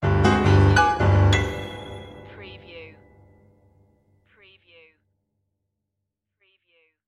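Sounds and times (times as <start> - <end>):
piano horror stab: 0.0 - 2.4.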